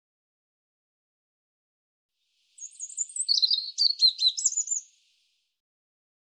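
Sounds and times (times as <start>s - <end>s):
European robin warbling song: 2.5s - 5.2s.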